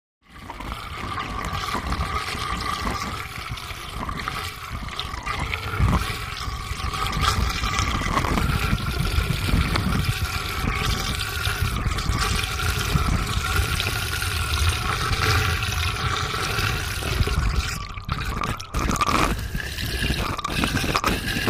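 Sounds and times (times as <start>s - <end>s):
water draining in a sink: 0.2s - 21.4s.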